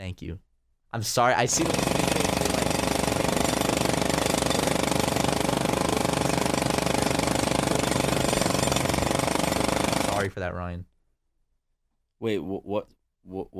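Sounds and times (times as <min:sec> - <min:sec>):
speech: 0:00.2 - 0:02.5, 0:10.4 - 0:10.9, 0:12.2 - 0:13.5
jackhammer pounding: 0:01.5 - 0:10.3.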